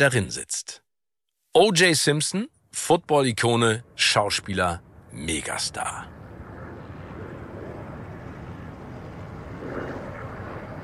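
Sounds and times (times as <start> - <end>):
speech: 0.0 - 0.8, 1.6 - 6.2
helicopter rotor and engine drone overhead filming a police chase: 2.8 - 10.8.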